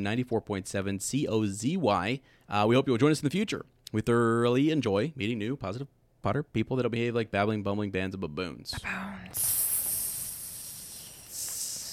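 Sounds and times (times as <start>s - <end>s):
speech: 0.0s - 9.6s
voice imitating a snake hiss: 9.3s - 11.9s.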